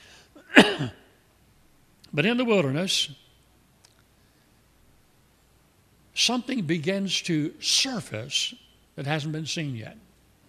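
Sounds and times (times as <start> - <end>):
faint intake of breath before a sneeze: 0.0 - 0.4
person sneezing: 0.4 - 1.1
speech: 0.6 - 1.0, 2.1 - 3.2, 6.3 - 10.1.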